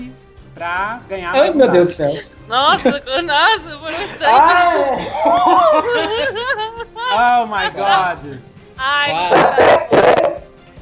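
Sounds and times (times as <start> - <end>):
speech: 0.6 - 10.2
laughter: 2.1 - 8.4
dog barking: 9.2 - 10.5.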